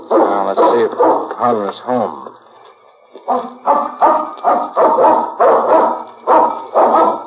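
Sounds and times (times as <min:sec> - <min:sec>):
dog barking: 0:00.0 - 0:01.5, 0:03.3 - 0:07.2
speech: 0:00.5 - 0:02.4, 0:03.3 - 0:05.3.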